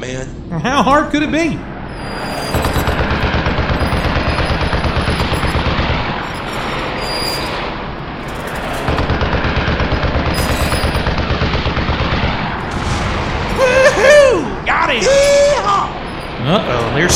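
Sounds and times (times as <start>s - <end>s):
speech: 0.0s - 2.3s, 16.5s - 17.1s
high wavering whines: 1.6s - 9.0s, 12.5s - 17.1s
rapid machine-gun fire from a bomber's tail gun: 2.5s - 6.8s, 8.7s - 14.0s.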